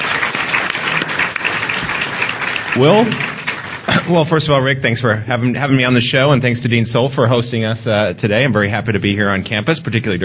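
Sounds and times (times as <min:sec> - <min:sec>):
crowd applauding: 0:00.0 - 0:04.8
speech: 0:02.8 - 0:03.3, 0:03.9 - 0:10.2.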